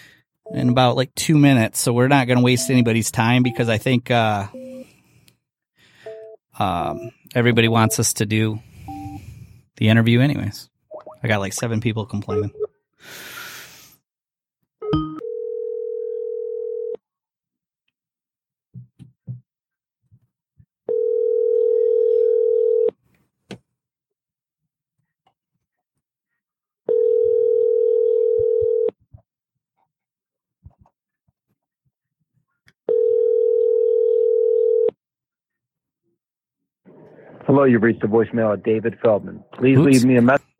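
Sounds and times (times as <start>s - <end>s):
speech: 0.5s - 4.6s, 6.6s - 8.7s, 9.8s - 13.3s, 37.5s - 40.5s
telephone ringback tone while a call is placed: 2.6s - 3.8s, 4.5s - 4.9s, 6.1s - 7.1s, 8.9s - 9.2s, 14.9s - 16.9s, 20.9s - 22.9s, 26.9s - 28.9s, 32.9s - 34.9s.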